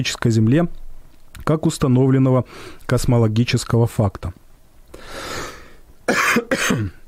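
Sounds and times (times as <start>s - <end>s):
speech: 0.0s - 0.8s, 1.4s - 5.5s
man coughing: 6.1s - 7.0s.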